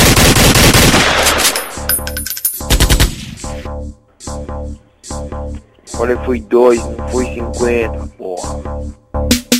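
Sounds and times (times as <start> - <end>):
rapid gunfire sound effect: 0.0 - 1.6, 2.7 - 3.3
metallic clinks: 1.6 - 2.7
speech: 6.0 - 9.4.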